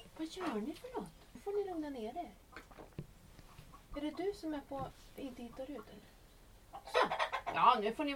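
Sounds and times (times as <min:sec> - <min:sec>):
speech: 0:00.4 - 0:01.2, 0:01.7 - 0:02.4, 0:04.0 - 0:06.2, 0:06.8 - 0:08.1
several chickens clucking and cackling in a henhouse: 0:05.4 - 0:08.0.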